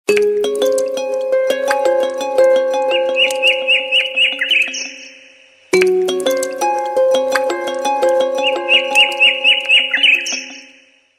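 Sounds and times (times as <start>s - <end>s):
harp water ringtone on Hisense A5 phone: 0.1s - 5.1s, 5.8s - 10.8s.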